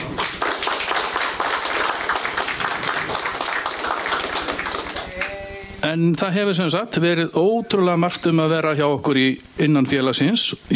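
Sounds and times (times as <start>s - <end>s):
audience applause after the signing of an agreement: 0.0s - 5.2s
speech: 5.9s - 10.7s.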